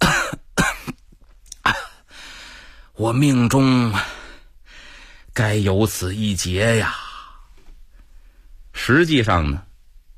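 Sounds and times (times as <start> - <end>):
storyteller imitating a sick man coughing and wheezing: 0.0 - 1.0, 1.6 - 2.0
speech: 3.0 - 4.1, 5.4 - 7.0, 8.8 - 9.7.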